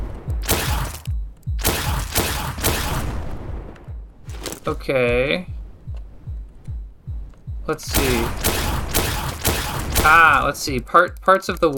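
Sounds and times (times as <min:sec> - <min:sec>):
video game rockets firing: 0:00.0 - 0:03.9, 0:07.9 - 0:10.8
video game laser gun firing: 0:00.4 - 0:03.2, 0:07.9 - 0:10.6
speech: 0:04.7 - 0:05.5, 0:07.7 - 0:08.4, 0:10.0 - 0:11.7.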